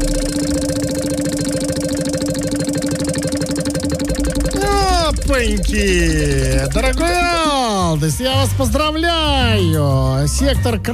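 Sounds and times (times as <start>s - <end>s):
prize wheel spinning and ratcheting at a game event: 0.0s - 8.4s
speech: 5.4s - 10.9s.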